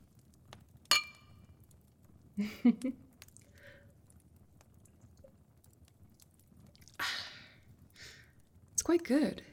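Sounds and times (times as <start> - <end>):
glasses clinking: 0.9 - 1.3
speech: 2.4 - 3.1, 9.0 - 9.5
soft sipping and swallowing: 3.2 - 7.2.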